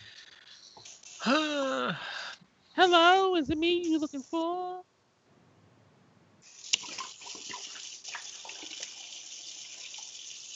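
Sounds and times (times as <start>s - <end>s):
speech: 1.2s - 2.1s, 2.8s - 4.9s
water running from a tap while rinsing out a beer bottle: 6.4s - 10.5s.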